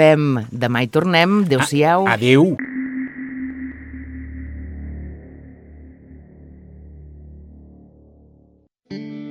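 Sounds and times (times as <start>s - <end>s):
speech: 0.0s - 2.6s
effects-heavy sustained tonal sound: 2.6s - 8.7s.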